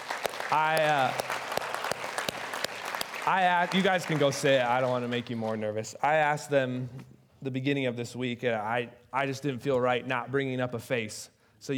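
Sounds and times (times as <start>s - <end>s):
room full of people clapping: 0.0s - 5.8s
speech: 0.5s - 1.4s, 3.2s - 11.7s.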